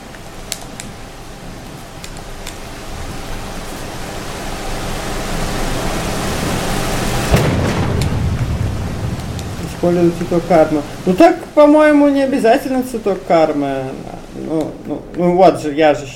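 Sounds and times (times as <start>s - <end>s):
steady low rumble of stormy noise: 2.8s - 16.1s
sharp lightning crack: 6.1s - 16.1s
rolling thunder boom: 7.3s - 11.0s
speech: 9.8s - 16.1s.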